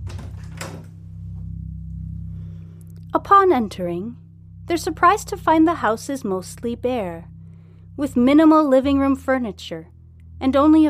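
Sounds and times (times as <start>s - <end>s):
front door opening with rattling clatter: 0.0s - 1.0s
steady low hum: 0.0s - 10.8s
speech: 3.1s - 7.3s, 8.0s - 10.8s.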